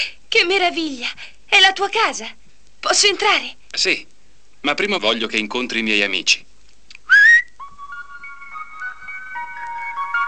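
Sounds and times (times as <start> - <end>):
speech: 0.0 - 6.5
person whistling to call animals in the woods: 7.1 - 8.2.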